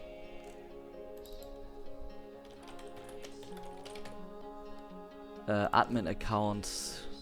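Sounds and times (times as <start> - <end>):
sustained tones: 0.0 - 7.1
typing on a computer keyboard while entering a password: 1.2 - 1.7, 2.4 - 4.4
speech: 5.5 - 7.1.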